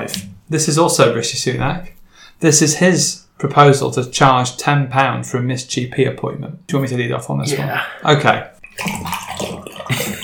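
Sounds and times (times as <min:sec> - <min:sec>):
speech: 0:00.0 - 0:09.2
water gurgling and rushing down a drain: 0:08.6 - 0:10.2.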